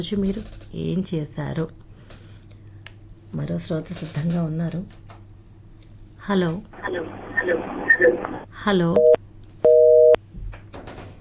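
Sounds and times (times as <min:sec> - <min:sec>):
speech: 0:00.0 - 0:01.8, 0:03.3 - 0:05.1, 0:06.2 - 0:09.2
telephone busy tone after a caller's line disconnects: 0:09.0 - 0:10.2.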